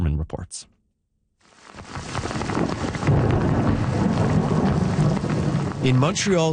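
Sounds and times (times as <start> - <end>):
speech: 0.3 - 0.8, 5.8 - 6.5
heavy rain during a thunderstorm in Quebec: 1.5 - 6.5
deep thunder rumbling in Quebec: 2.0 - 6.5.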